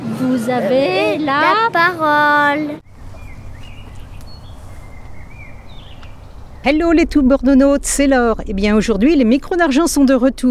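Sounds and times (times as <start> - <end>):
speech: 0.2 - 2.9, 6.6 - 10.4
steady low rumble of traffic or wind in the Parc du Courneau at Canéjan: 2.1 - 10.4
faint birds chirping and whistling in the Parc du Courneau at Canéjan: 2.8 - 7.2.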